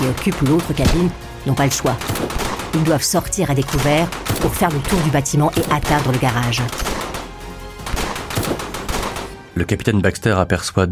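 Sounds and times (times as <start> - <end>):
rifle fired from a bedroom window emptying a fresh magazine: 0.0 - 1.1, 1.9 - 3.0, 3.6 - 9.4
speech: 0.1 - 7.1, 9.6 - 10.9.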